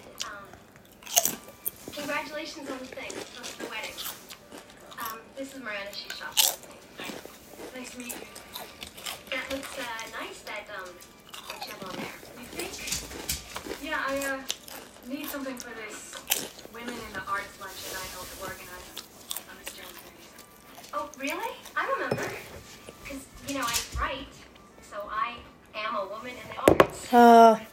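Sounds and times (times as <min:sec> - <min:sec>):
sharp crunches and chewing of potato chips: 0:00.0 - 0:24.7
potato chips being eaten: 0:00.2 - 0:16.7
speech: 0:02.2 - 0:04.1, 0:05.4 - 0:16.1, 0:16.8 - 0:19.0, 0:21.1 - 0:22.5, 0:23.1 - 0:24.4, 0:25.3 - 0:27.7.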